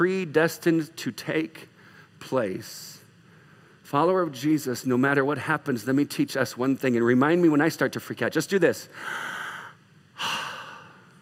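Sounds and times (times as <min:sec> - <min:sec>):
speech: 0:00.0 - 0:03.0, 0:03.9 - 0:09.4
deep breath: 0:01.8 - 0:02.2, 0:03.2 - 0:03.8, 0:08.9 - 0:11.2.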